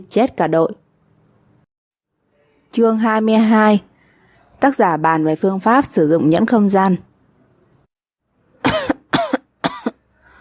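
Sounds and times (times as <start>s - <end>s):
speech: 0.0s - 0.8s, 2.7s - 3.9s, 4.6s - 7.1s
woman coughing violently while choking in thick smoke: 8.6s - 10.0s.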